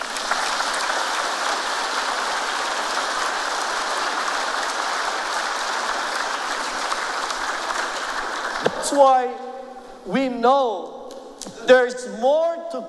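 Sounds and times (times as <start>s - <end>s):
audience applause: 0.0s - 9.2s
speech: 8.9s - 12.8s.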